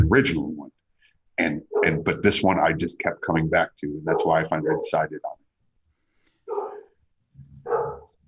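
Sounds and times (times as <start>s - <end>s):
speech: 0.1s - 0.6s, 1.4s - 5.4s
dog barking outside through an open window: 1.7s - 2.1s, 4.1s - 5.0s, 6.5s - 7.0s, 7.6s - 8.2s.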